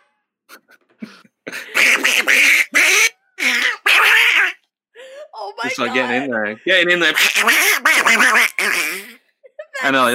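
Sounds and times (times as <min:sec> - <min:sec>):
person imitating a duck quacking: 0:01.7 - 0:04.6, 0:07.0 - 0:09.2
speech: 0:05.8 - 0:09.2, 0:09.8 - 0:10.1.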